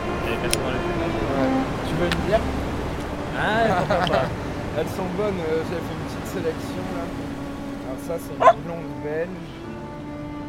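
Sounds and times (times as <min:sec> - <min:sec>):
people chatting casually in French: 0:00.2 - 0:02.6, 0:03.3 - 0:07.1, 0:07.9 - 0:09.6
laughter: 0:03.4 - 0:04.6
speech: 0:03.4 - 0:07.3, 0:07.9 - 0:09.6
single short dog bark: 0:08.4 - 0:08.6.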